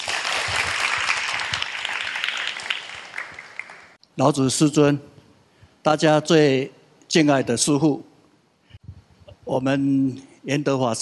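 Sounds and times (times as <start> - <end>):
crowd applauding to welcome a company chairman: 0.0 - 4.0
speech: 4.2 - 5.1, 5.8 - 8.1, 9.5 - 11.0.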